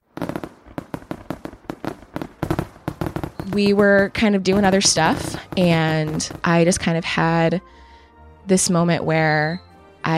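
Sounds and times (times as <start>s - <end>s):
rapid string of sharp crackling fireworks bursts: 0.0s - 7.4s
speech: 3.5s - 7.8s, 8.5s - 10.1s.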